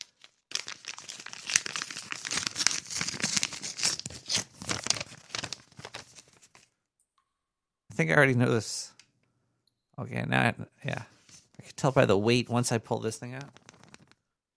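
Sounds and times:
paper envelope being opened slowly: 0:00.0 - 0:06.7, 0:13.4 - 0:14.2
speech: 0:08.0 - 0:08.9, 0:10.0 - 0:11.1, 0:11.8 - 0:13.6.

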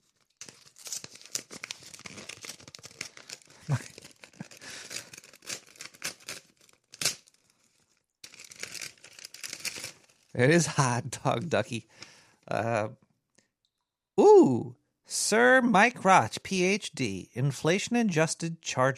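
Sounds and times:
envelope contents crinkling: 0:00.0 - 0:10.4
mailed paper envelope torn open: 0:00.0 - 0:10.4
speech: 0:03.7 - 0:03.9, 0:10.4 - 0:13.0, 0:14.4 - 0:18.9.

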